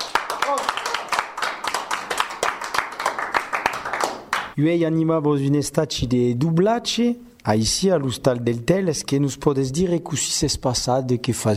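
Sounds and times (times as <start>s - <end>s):
small group applauding: 0.0s - 4.6s
speech: 4.6s - 11.5s.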